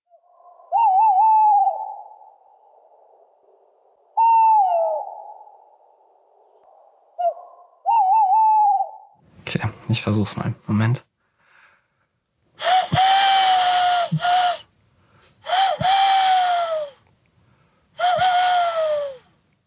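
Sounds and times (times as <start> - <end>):
tawny owl hooting call, played recording: 0.1 - 9.2, 12.6 - 14.6, 15.4 - 17.0, 18.0 - 19.3
speech: 9.9 - 11.1.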